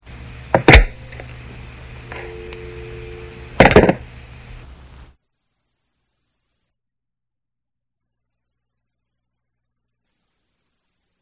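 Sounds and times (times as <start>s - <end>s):
telephone pickup: 0.1s - 5.0s
telephone hang up: 0.5s - 4.6s.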